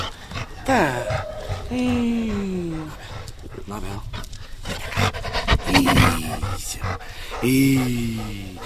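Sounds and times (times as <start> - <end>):
dog panting: 0.0 - 8.6
dog whining, yelping and grumbling excitedly at seeing its owner: 0.5 - 3.0
speech: 0.7 - 3.0, 3.7 - 4.2, 5.7 - 8.6.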